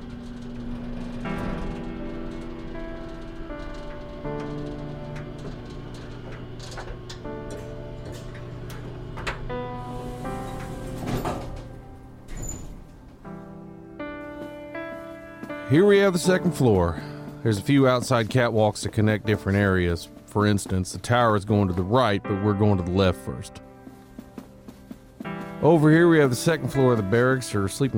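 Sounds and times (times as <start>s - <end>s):
rattling clunk: 0.0s - 13.2s
old elevator creaking and groaning while rising: 0.0s - 27.9s
clicks and knocks: 0.2s - 9.6s
speech: 15.7s - 23.6s, 25.6s - 27.9s.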